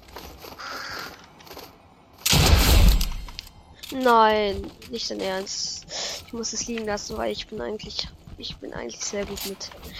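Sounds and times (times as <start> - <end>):
bird cawing in a video game: 0.6 - 1.2
speech: 3.9 - 9.9.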